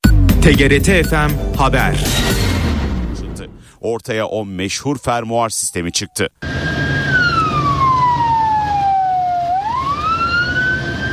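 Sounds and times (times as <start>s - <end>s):
low rumble: 0.0s - 3.7s
speech: 0.4s - 2.3s, 3.8s - 6.7s
ambulance siren speeding through a traffic corridor: 5.5s - 11.1s.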